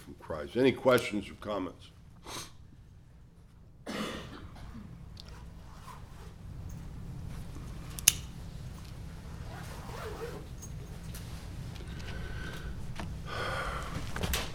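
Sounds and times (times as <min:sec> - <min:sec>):
low steady hum: 0:00.0 - 0:14.5
speech: 0:00.3 - 0:02.5
cough: 0:03.8 - 0:04.9.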